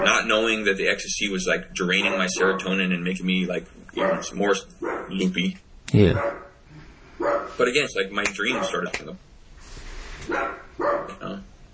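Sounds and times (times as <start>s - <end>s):
faint hum: 0.0s - 11.7s
speech: 0.3s - 6.4s, 7.2s - 9.3s, 10.3s - 11.4s
dog barking: 2.0s - 2.8s, 4.0s - 5.2s, 6.2s - 6.6s, 7.2s - 7.6s, 8.4s - 8.9s, 10.3s - 11.3s.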